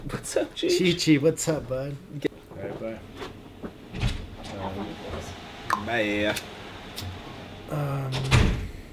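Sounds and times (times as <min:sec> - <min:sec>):
speech: 0:00.2 - 0:02.3, 0:05.9 - 0:06.6
door creaking on its hinges: 0:08.0 - 0:08.7
door shutting with a solid thud: 0:08.1 - 0:08.7.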